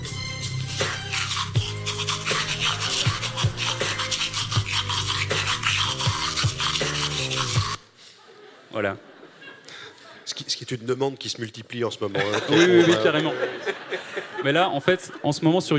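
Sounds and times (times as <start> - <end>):
AI-generated toothbrush scrubbing sounds shaped into a sung song melody: 0.2 - 7.8
laughter: 8.1 - 10.3, 12.1 - 15.5
speech: 8.8 - 9.0, 10.7 - 15.7.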